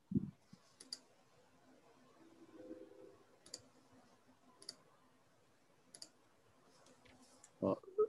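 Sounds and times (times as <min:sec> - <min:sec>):
faint low hum: 0:00.0 - 0:08.0
quiet sharp computer mouse clicks: 0:00.8 - 0:01.1, 0:03.4 - 0:03.7, 0:04.6 - 0:04.8, 0:05.9 - 0:06.2.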